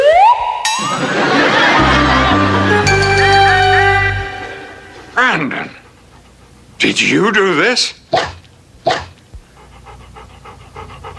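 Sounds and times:
laughter: 0.8s - 5.0s
dog panting: 5.4s - 7.4s, 9.1s - 11.1s
speech: 6.8s - 8.4s.

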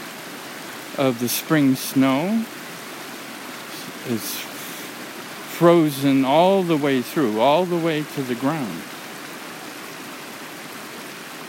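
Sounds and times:
snowmelt stream water flowing: 0.0s - 11.4s
speech: 0.9s - 2.6s, 4.0s - 4.5s, 5.6s - 8.9s.

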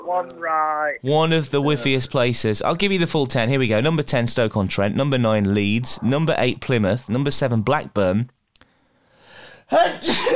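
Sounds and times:
speech: 0.1s - 8.4s, 9.7s - 10.3s
person sneezing: 9.7s - 10.3s.

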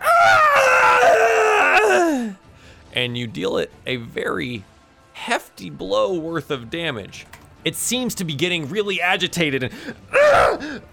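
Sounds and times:
person imitating a monster screaming in pain: 0.0s - 2.4s, 10.1s - 10.7s
speech: 3.0s - 10.9s.

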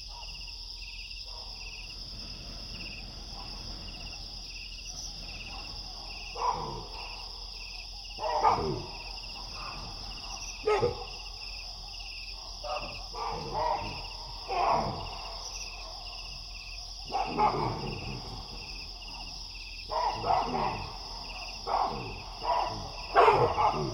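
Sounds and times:
pulsing insect chirps: 0.0s - 23.9s
roosting baboons barking in alarm in Niokolo Koba national park: 5.1s - 7.2s, 8.2s - 11.8s, 12.4s - 16.0s, 17.0s - 23.9s.

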